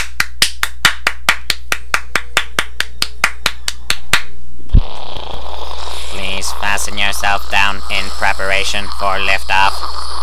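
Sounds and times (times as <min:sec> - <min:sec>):
crisp hand claps: 0:00.0 - 0:04.3
speech: 0:06.6 - 0:10.1.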